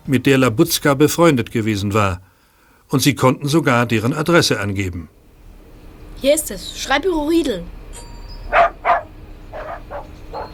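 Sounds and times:
speech: 0:00.1 - 0:02.3, 0:02.9 - 0:05.2, 0:06.2 - 0:07.8
small dog barking: 0:08.5 - 0:10.5.

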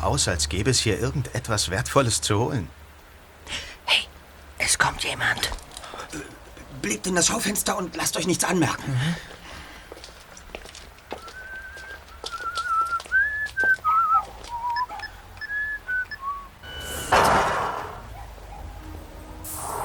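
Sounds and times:
speech: 0:00.0 - 0:02.8, 0:03.5 - 0:04.1, 0:04.8 - 0:09.4
street noise: 0:00.0 - 0:19.8
faint footsteps: 0:09.2 - 0:16.4
man whistling a tuneful song melody: 0:11.2 - 0:16.6.

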